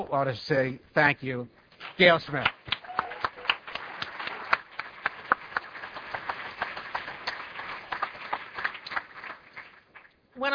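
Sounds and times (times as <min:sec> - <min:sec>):
speech: 0:00.0 - 0:02.6
crowd applauding: 0:01.9 - 0:10.1.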